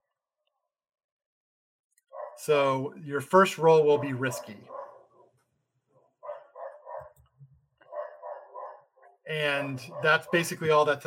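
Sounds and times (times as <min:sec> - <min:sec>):
dogs barking in video game ambience on abandoned subway tracks: 0:02.1 - 0:02.4, 0:03.9 - 0:05.3, 0:06.0 - 0:07.2, 0:07.8 - 0:10.7
speech: 0:02.4 - 0:04.8, 0:09.4 - 0:11.0.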